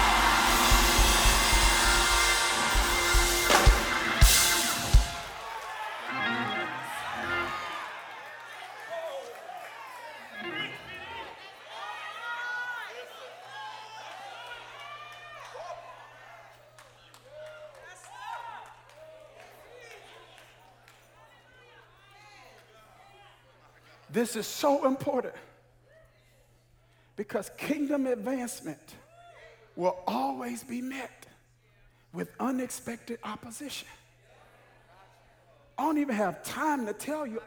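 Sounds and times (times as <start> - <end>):
large crowd roaring imitating lions: 0.0 - 7.9
crowd shouting and whooping: 0.0 - 20.5
speech: 24.2 - 25.5, 27.2 - 29.0, 29.8 - 31.3, 32.1 - 34.0, 35.8 - 37.4.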